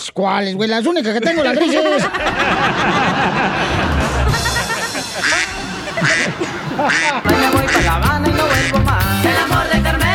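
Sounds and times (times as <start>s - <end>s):
speech: 0.0s - 4.5s, 5.2s - 10.0s
laughter: 1.0s - 9.0s
duck quacking: 5.2s - 9.0s.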